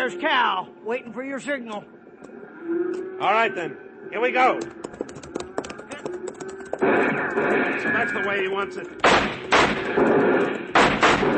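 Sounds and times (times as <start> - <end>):
speech: 0.0 - 5.1, 6.8 - 10.6
gunshots in a western shootout with riders on horseback: 6.7 - 8.4, 9.0 - 11.3.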